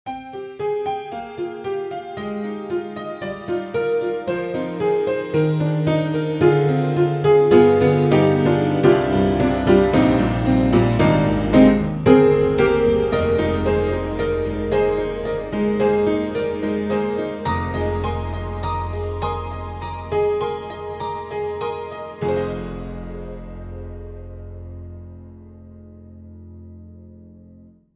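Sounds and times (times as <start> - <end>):
upright tack piano playing spaced comping chords: 0.1 - 27.7.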